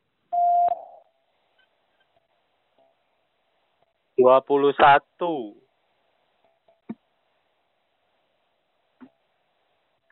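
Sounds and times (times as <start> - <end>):
answer prompt electronic beep: 0.3 - 1.0
speech: 4.2 - 5.6.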